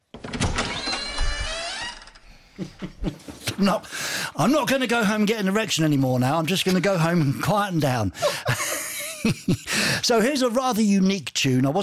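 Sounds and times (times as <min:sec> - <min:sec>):
door creaking open: 0:00.0 - 0:02.3
speech: 0:02.6 - 0:11.8
laughter: 0:08.1 - 0:09.8.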